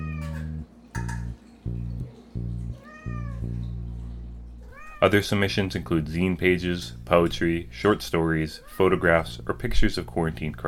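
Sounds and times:
cat meowing: 0:00.0 - 0:00.6, 0:02.8 - 0:03.7, 0:04.6 - 0:05.1, 0:08.6 - 0:09.0
quietly plucked low bass notes: 0:00.2 - 0:04.6, 0:05.4 - 0:07.9
speech: 0:05.0 - 0:10.6.

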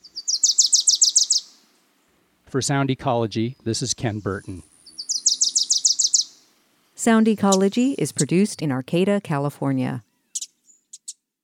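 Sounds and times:
Wilson's Warbler stuttering chatter song: 0:00.0 - 0:01.7, 0:03.5 - 0:08.5, 0:10.2 - 0:11.2
speech: 0:02.5 - 0:04.7, 0:07.0 - 0:10.1.

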